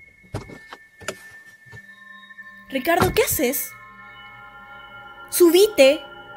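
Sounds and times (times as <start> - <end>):
clunks and thumps of driver climbing out: 0.0 - 1.9, 3.0 - 3.5
steady high electronic chime: 0.0 - 6.3
car door unlatching and opening: 0.3 - 1.2, 3.0 - 3.5
speech: 2.7 - 3.8, 5.4 - 6.1.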